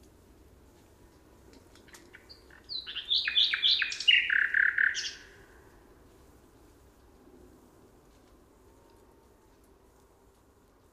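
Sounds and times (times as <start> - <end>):
Common nightingale song: 1.8 - 5.7.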